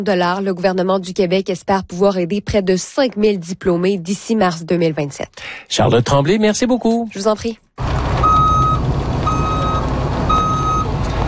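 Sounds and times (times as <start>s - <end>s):
speech: 0.0s - 7.9s
continuous low truck engine rumble: 7.8s - 11.2s
truck reversing beeps at a construction site: 8.2s - 11.2s.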